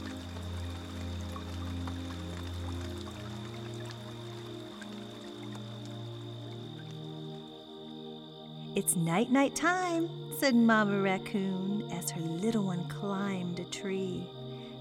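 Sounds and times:
rain pattering: 0.0 - 7.6
gentle musical tones: 0.0 - 14.7
speech: 8.8 - 14.4.

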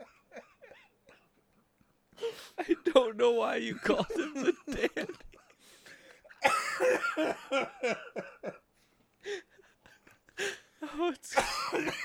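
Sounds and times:
speech: 2.6 - 5.3, 6.8 - 8.6
laughter: 3.7 - 5.5
harsh barking coughs: 6.4 - 7.2, 11.4 - 12.0.

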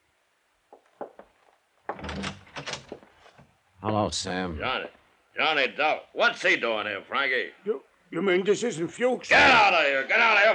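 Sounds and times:
door scraping as it is pulled open: 1.9 - 3.0
latch or handle clicks and knocks: 1.9 - 3.5
speech: 3.8 - 10.5.

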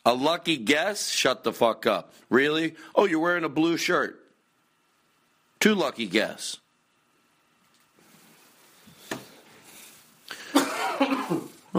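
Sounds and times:
speech: 0.0 - 4.2, 5.6 - 6.6, 10.9 - 11.7
person coughing with a raspy tail: 10.3 - 11.7.

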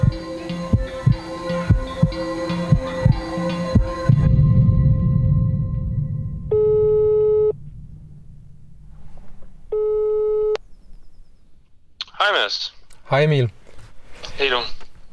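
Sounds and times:
rhythmic thumping: 0.0 - 10.2
low hum: 3.8 - 15.1
phone ringback tone: 6.5 - 7.6, 9.7 - 10.6
speech: 13.1 - 13.6, 14.4 - 15.1.

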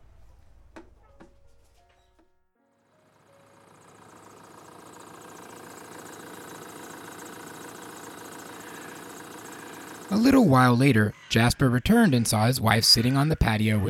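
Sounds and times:
truck engine starting and running: 2.8 - 11.0
speech: 10.1 - 13.8.

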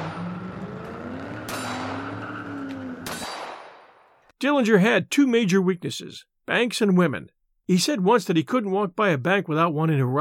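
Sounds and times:
car engine roaring as it accelerates away: 0.0 - 3.6
sharp metallic bangs: 0.0 - 4.1
speech: 4.4 - 10.1.

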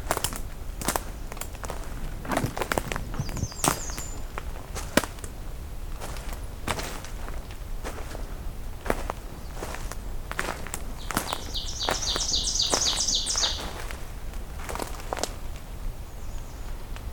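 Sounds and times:
footsteps crunching through leaf litter: 0.0 - 15.7
ovenbird singing close by: 3.0 - 4.4, 10.9 - 14.0, 16.1 - 16.9.

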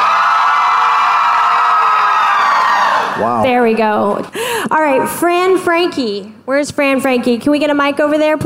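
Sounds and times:
large live audience screaming and cheering: 0.0 - 3.4
speech: 3.5 - 8.4.

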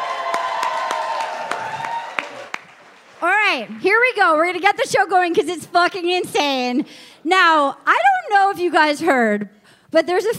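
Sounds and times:
live comedy-show audience applause: 0.0 - 3.8
speech: 3.6 - 10.3.

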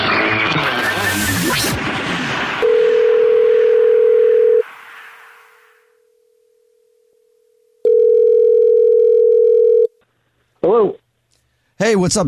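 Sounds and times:
noisy jumble: 0.0 - 7.6
faint hum: 1.2 - 12.2
telephone tone of a call being placed: 2.6 - 4.7, 7.2 - 10.0
speech: 11.8 - 12.2.

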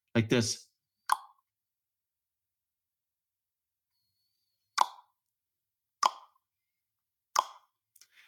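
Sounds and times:
speech: 0.2 - 0.7
crisp tongue pops from the roof of the mouth: 1.1 - 1.4, 4.8 - 5.2, 6.0 - 6.4, 7.3 - 7.7.

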